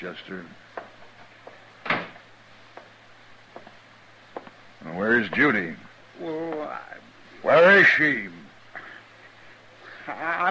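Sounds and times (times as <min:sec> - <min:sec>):
speech: 0:00.0 - 0:00.7, 0:04.8 - 0:08.4, 0:10.1 - 0:10.4
low steady hum: 0:00.0 - 0:10.4
faint clicks and knocks: 0:00.7 - 0:04.6
door being shut with a solid thud: 0:01.8 - 0:02.3.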